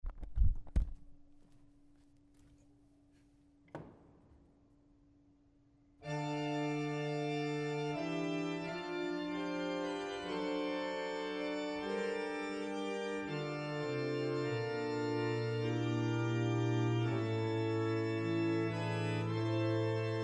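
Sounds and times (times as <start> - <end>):
Grand plein jeu on pipe organ: 6.0 - 20.2.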